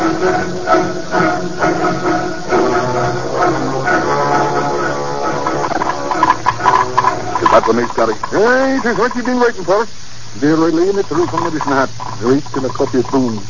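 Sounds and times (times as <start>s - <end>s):
low mechanical rumble: 0.0s - 13.4s
steam locomotive hissing at a busy railway platform: 0.0s - 13.4s
speech: 0.2s - 1.8s, 7.7s - 13.4s
faint clatter: 4.4s - 13.4s.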